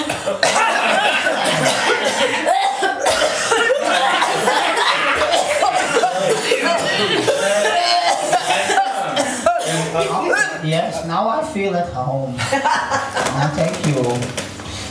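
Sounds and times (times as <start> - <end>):
audience chuckling and laughing: 0.0 - 10.6, 12.4 - 13.4
audience coughing on request: 0.0 - 10.6
speech: 0.3 - 0.5, 11.0 - 14.5.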